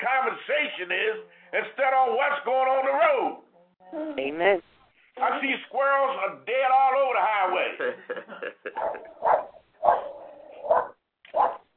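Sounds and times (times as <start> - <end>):
speech: 0.3 - 3.4, 4.2 - 9.4
laughter: 7.6 - 9.2
dog barking: 8.7 - 11.7.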